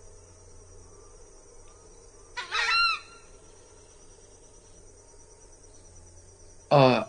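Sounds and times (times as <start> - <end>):
faint steady insect buzz: 0.0 - 7.0
large screamer bird honking calls: 2.4 - 3.3.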